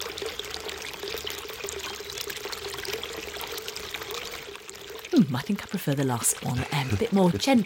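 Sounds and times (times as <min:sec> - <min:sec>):
water feature trickling and pouring at Pazo de Señorens: 0:00.0 - 0:07.6
speech: 0:05.2 - 0:07.6.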